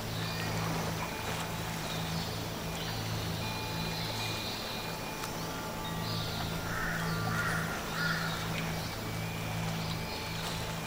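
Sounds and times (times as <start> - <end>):
birds calling in a watery forest: 0.0 - 10.8
dense wash of ambient wetland noise: 0.0 - 10.8
steady low hum: 0.0 - 10.8
harsh crow-like caws: 6.7 - 8.4.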